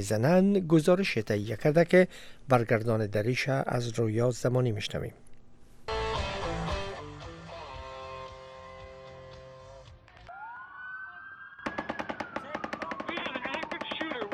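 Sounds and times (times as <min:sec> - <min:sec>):
speech: 0:00.0 - 0:05.3
music: 0:05.9 - 0:10.3
rising siren wail: 0:10.3 - 0:14.3
rapid automatic gunfire: 0:11.7 - 0:14.3.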